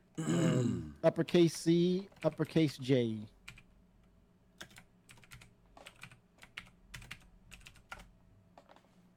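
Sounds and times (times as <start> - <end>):
speech: 1.0 - 3.4
typing on a computer keyboard: 4.6 - 9.1.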